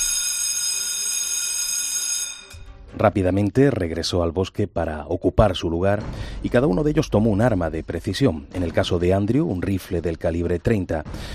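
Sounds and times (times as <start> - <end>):
school fire alarm ringing: 0.0 - 2.7
speech: 3.0 - 11.3.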